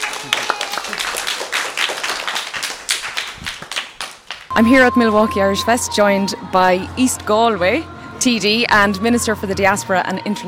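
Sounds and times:
crowd applauding: 0:00.0 - 0:04.6
speech: 0:04.6 - 0:10.4.

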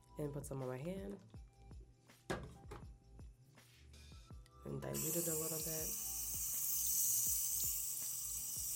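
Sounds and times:
speech: 0:00.2 - 0:01.4, 0:04.9 - 0:06.1
water pouring from a faucet: 0:05.0 - 0:08.7.

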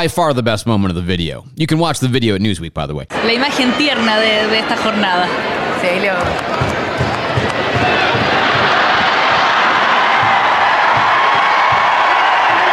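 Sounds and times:
speech: 0:00.0 - 0:06.8
huge stadium crowd at a game roaring and cheering: 0:03.1 - 0:12.7
scattered shouts and whoops from the crowd: 0:07.7 - 0:12.7.

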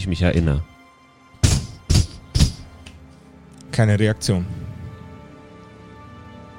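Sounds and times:
speech: 0:00.0 - 0:00.7, 0:03.8 - 0:04.6
voice imitating knocking on a heavy wooden door with the mouth: 0:01.4 - 0:02.7.

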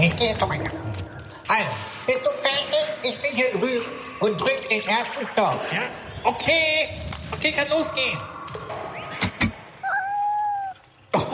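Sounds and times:
speech: 0:00.1 - 0:00.9, 0:01.5 - 0:08.4
kitten meowing: 0:09.8 - 0:10.8.

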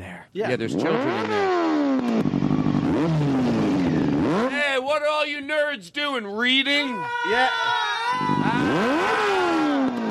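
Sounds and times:
speech: 0:00.4 - 0:03.6, 0:04.3 - 0:09.8
motorcycle engine revving: 0:00.5 - 0:04.6, 0:08.2 - 0:10.0.

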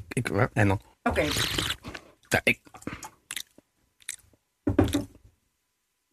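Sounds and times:
speech: 0:00.2 - 0:01.7, 0:02.3 - 0:02.7
person chewing food while tasting it: 0:01.3 - 0:02.2, 0:02.8 - 0:04.3.

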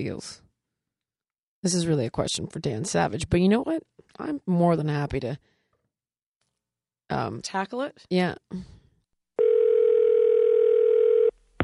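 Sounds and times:
speech: 0:00.0 - 0:00.4, 0:01.6 - 0:05.5, 0:07.1 - 0:08.8
telephone dial tone while placing a call: 0:09.4 - 0:11.4.

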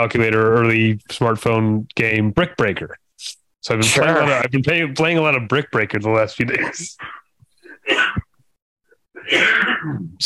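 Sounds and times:
speech: 0:00.0 - 0:07.2, 0:09.2 - 0:10.2
harsh explosive coughing: 0:06.6 - 0:08.4, 0:09.2 - 0:10.2.

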